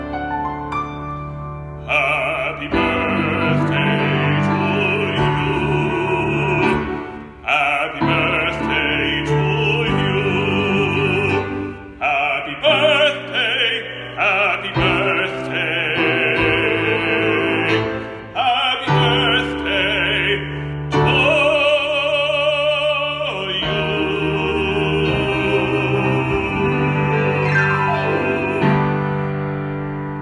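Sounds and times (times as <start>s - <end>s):
operatic birthday song singing in English with piano: 0.2s - 30.1s.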